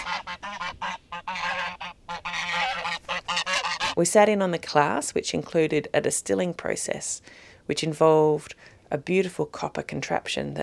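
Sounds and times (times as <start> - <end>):
geese honking at visitors: 0.0 - 4.0
speech: 4.0 - 10.6.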